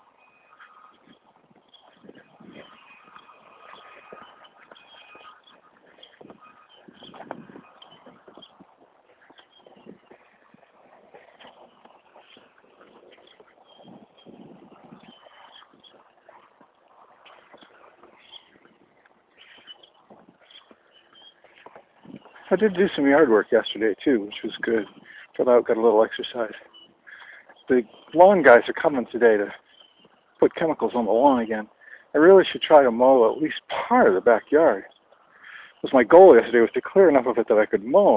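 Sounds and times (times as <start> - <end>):
boat-tailed grackles calling: 0.2 - 22.8, 26.6 - 32.8
speech: 22.5 - 26.8, 27.7 - 29.6, 30.4 - 34.9, 35.8 - 38.1.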